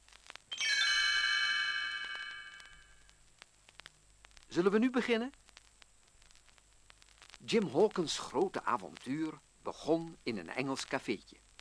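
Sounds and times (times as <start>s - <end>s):
tinkling little bells as a page-turn cue in a read-along storybook: 0.5s - 3.0s
speech: 4.5s - 5.4s, 7.5s - 11.4s.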